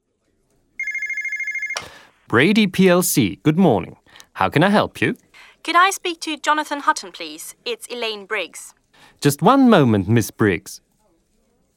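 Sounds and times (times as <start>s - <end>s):
telephone ringing with electronic trill: 0.8s - 2.0s
speech: 2.3s - 10.8s.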